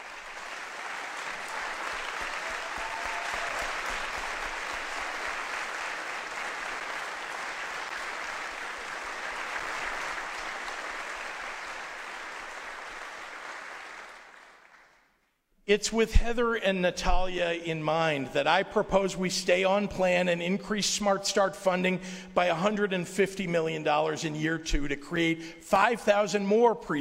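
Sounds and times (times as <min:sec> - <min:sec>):
sustained applause from a large crowd: 0:00.0 - 0:15.1
speech: 0:15.7 - 0:26.9.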